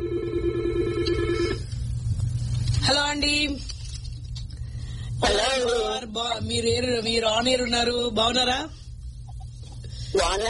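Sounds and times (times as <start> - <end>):
telephone ringing as a caller is put through: 0.0 - 1.7
low hum: 0.0 - 10.4
speech: 5.2 - 8.8, 10.2 - 10.4.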